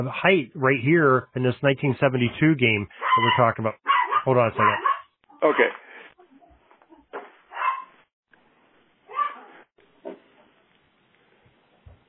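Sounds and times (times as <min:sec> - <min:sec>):
speech: 0:00.0 - 0:05.8
dog barking excitedly: 0:03.0 - 0:05.8, 0:07.5 - 0:08.0, 0:09.1 - 0:09.6.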